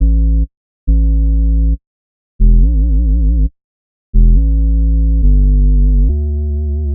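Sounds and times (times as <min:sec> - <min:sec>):
bass loop in A minor at 138 bpm: 0:00.0 - 0:01.8, 0:02.4 - 0:06.9.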